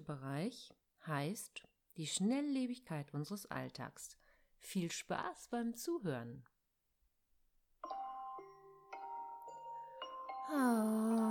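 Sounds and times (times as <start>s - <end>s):
speech: 0.0s - 6.5s, 10.5s - 11.2s
alarm clock ringing with a bright electronic melody: 7.8s - 11.2s.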